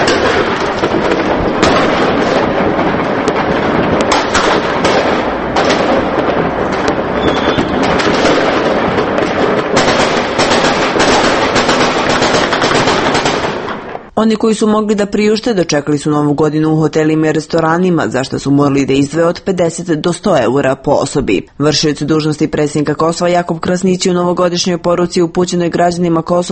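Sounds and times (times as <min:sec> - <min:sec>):
fireworks and firecrackers at midnight for New Year's in Kosovo: 0:00.0 - 0:14.1
speech: 0:14.2 - 0:26.5.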